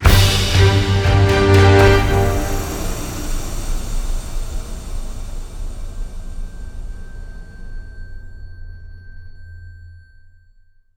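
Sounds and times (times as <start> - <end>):
free spin outro music: 0.0 - 3.7.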